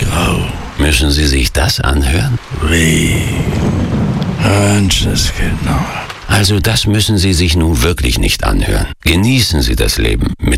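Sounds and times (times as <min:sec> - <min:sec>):
dense rain hissing: 0:00.0 - 0:08.8
speech: 0:00.9 - 0:10.5
low rumble: 0:02.3 - 0:07.3.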